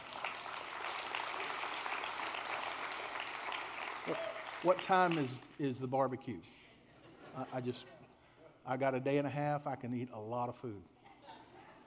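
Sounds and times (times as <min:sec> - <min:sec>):
audience applause: 0:00.0 - 0:05.6
speech: 0:04.1 - 0:06.6, 0:07.4 - 0:08.0, 0:08.7 - 0:10.9.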